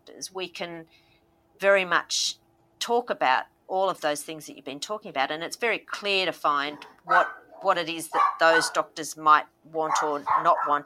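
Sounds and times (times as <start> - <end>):
speech: 0.1 - 10.8
dog barking in the background: 6.7 - 8.8, 9.8 - 10.8.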